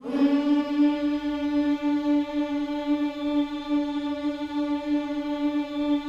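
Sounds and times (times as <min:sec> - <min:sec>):
gospel vocals: 0:00.0 - 0:06.0.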